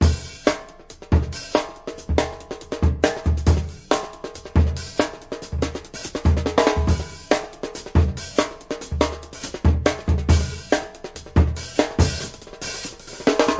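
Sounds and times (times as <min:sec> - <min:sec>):
drum loops and breaks: 0:00.0 - 0:13.5.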